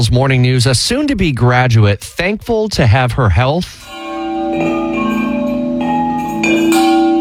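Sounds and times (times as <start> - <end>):
speech: 0.0 - 4.9
chime ringing: 3.8 - 7.1.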